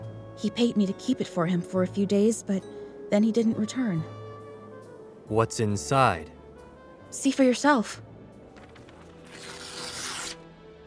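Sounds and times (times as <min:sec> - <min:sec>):
speech: 0:00.4 - 0:04.2, 0:05.3 - 0:06.4, 0:07.1 - 0:08.1
brown paper package being torn open: 0:08.6 - 0:10.5.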